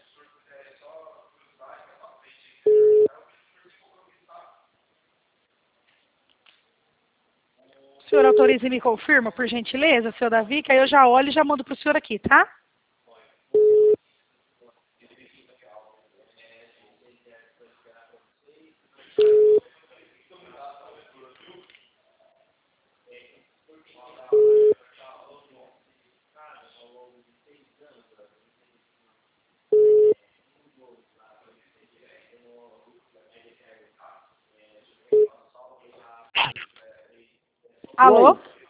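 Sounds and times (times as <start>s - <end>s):
telephone busy tone beeps after a dropped call: 2.7s - 3.1s, 13.6s - 14.0s, 19.2s - 19.6s, 24.4s - 24.8s, 29.8s - 30.2s
speech: 8.1s - 12.6s, 38.0s - 38.5s.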